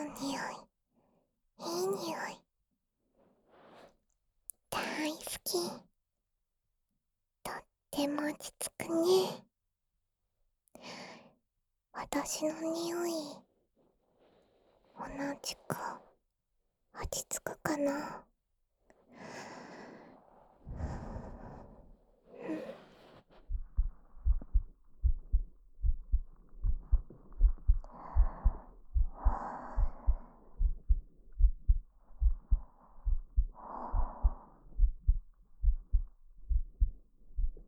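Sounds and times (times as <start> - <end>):
speech: 0.2 - 0.7, 1.6 - 2.4, 5.0 - 5.9, 7.4 - 9.5, 10.8 - 11.2, 12.0 - 13.5, 15.0 - 16.1, 17.0 - 18.3
soft breathing and sighing: 19.0 - 37.6
human heartbeat: 23.4 - 37.6.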